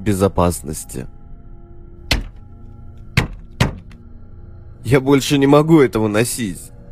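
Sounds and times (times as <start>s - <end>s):
speech: 0.0s - 1.2s, 4.8s - 6.7s
sharp knocks on a window: 2.1s - 2.4s, 3.2s - 4.0s.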